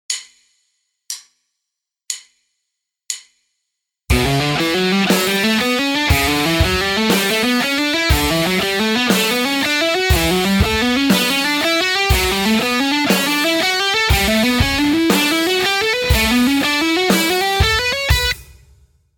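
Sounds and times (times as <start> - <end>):
slow legato music: 4.1 - 18.3.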